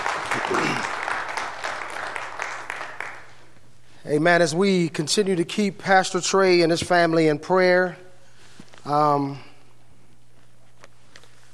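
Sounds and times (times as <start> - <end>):
congregation clapping in applause in a large room: 0.0 - 3.6
speech: 4.1 - 8.0, 8.8 - 9.5.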